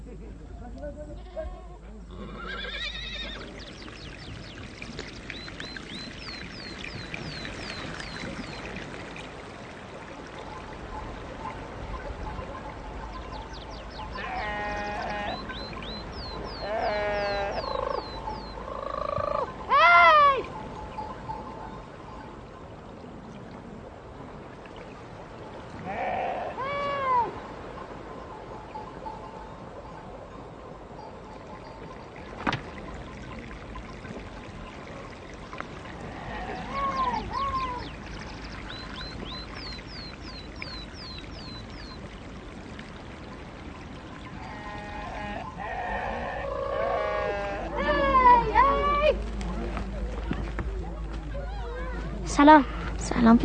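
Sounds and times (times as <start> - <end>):
speech: 0.8 - 2.8, 52.4 - 53.4
steady rushing outdoor like running water: 2.3 - 53.4
sheep bleating: 14.2 - 15.5, 16.5 - 17.8, 25.8 - 27.2, 44.4 - 48.8.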